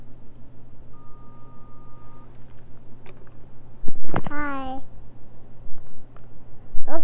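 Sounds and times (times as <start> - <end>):
low hum: 0.0 - 7.0
single steady electronic beep: 0.9 - 2.3.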